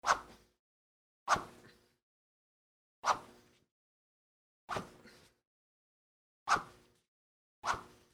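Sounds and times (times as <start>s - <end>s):
karate sword swish: 0.0s - 0.4s, 1.3s - 1.8s, 3.0s - 3.5s, 4.7s - 5.4s, 6.5s - 7.0s, 7.6s - 8.1s.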